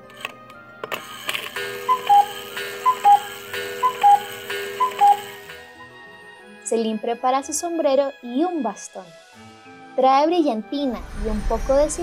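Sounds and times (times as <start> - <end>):
speech: 0.8 - 1.2, 6.7 - 9.2, 10.0 - 12.0
clock ticking: 1.6 - 5.6.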